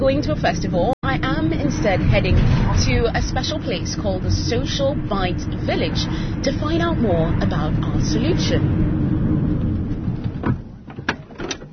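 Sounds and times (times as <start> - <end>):
speech: 0.0 - 8.9
steady low rumble outdoors at a seaside location: 0.0 - 11.7
car door shutting: 9.6 - 11.7
car door handling knocks and thuds: 10.0 - 11.7.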